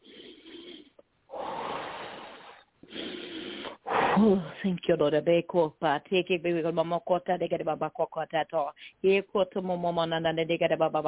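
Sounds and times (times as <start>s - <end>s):
deep breath taken during a prayer session: 0.0s - 4.3s
speech: 4.2s - 11.0s.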